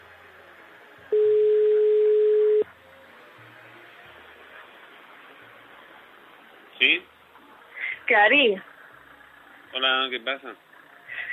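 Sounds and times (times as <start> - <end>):
telephone ringback tone: 1.1 - 2.6
speech: 6.8 - 7.1, 8.1 - 8.7, 9.8 - 10.7.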